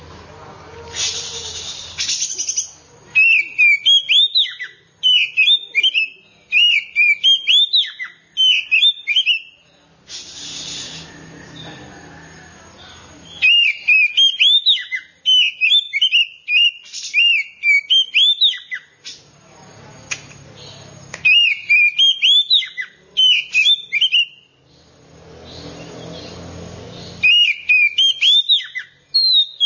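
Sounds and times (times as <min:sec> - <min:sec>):
hissing noise: 0:00.8 - 0:02.4, 0:10.0 - 0:11.4
Oriental magpie-robin singing: 0:01.5 - 0:09.6, 0:13.2 - 0:19.2, 0:20.6 - 0:24.9, 0:27.0 - 0:29.6.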